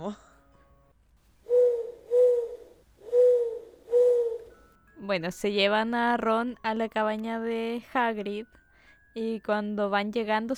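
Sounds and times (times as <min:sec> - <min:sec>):
speech: 0:00.0 - 0:00.3, 0:05.1 - 0:08.6, 0:09.2 - 0:10.5
owl hooting: 0:01.4 - 0:04.6.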